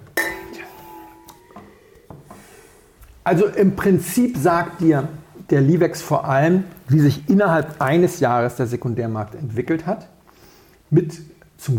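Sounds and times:
two wine glasses clinking in a toast: 0.0 - 2.0
speech: 3.2 - 10.1, 10.9 - 11.7.

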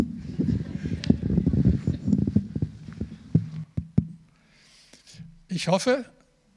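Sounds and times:
microphone being handled and swapped, rustling and thumping: 0.0 - 4.4
faint breezy hiss: 0.0 - 6.5
sharp knocks from microphone handling: 2.4 - 4.2
speech: 5.6 - 6.2.

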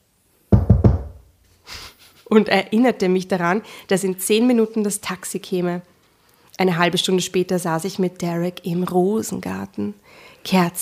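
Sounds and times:
knocking on a door: 0.5 - 1.3
soft rustling hiss: 1.2 - 10.8
speech: 2.3 - 5.9, 6.6 - 10.8.

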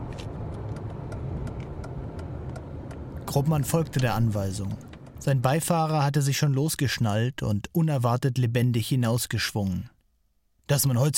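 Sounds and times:
car engine rumbling as the car pulls onto a parking lot: 0.0 - 6.1
speech: 3.3 - 9.9, 10.7 - 11.1.

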